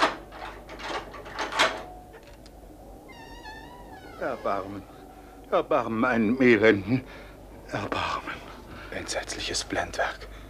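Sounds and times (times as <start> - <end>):
tower door being unlocked with keys: 0.0 - 4.5
tower door scraping as it is pushed open: 3.0 - 5.1
speech: 4.2 - 8.1, 9.0 - 10.3.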